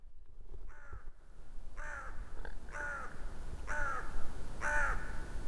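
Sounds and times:
crow cawing: 0.7s - 1.1s, 1.8s - 5.3s.

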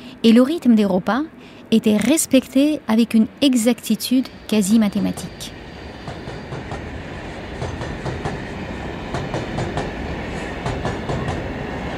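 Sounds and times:
speech: 0.2s - 5.6s
suburban train wheels clattering over rail joints: 4.3s - 11.9s.

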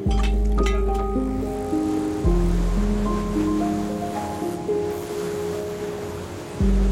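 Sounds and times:
ocean waves: 0.0s - 6.9s
sustained shifting musical tones: 0.0s - 6.9s.

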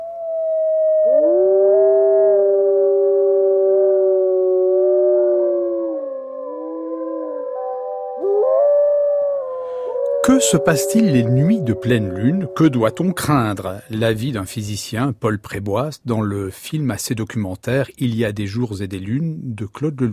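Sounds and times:
dogs or wolves howling in chorus: 0.2s - 14.1s
speech: 10.3s - 20.1s.

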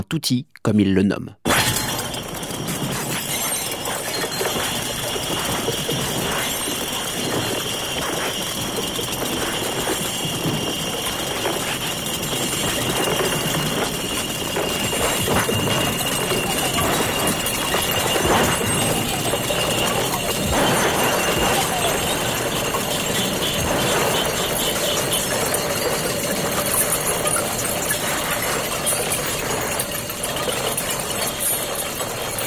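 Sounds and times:
speech: 0.1s - 1.7s
glass breaking crashes: 1.4s - 32.4s
glass clinking: 1.5s - 32.4s
sustained ringing glass tones: 1.5s - 32.4s.

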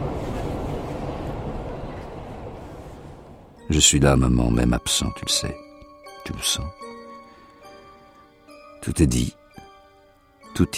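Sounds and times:
metro train in motion heading toward Percy-Clamart military hospital: 0.0s - 5.6s
speech: 3.7s - 5.7s, 6.3s - 6.9s, 8.8s - 9.4s, 10.6s - 10.7s.

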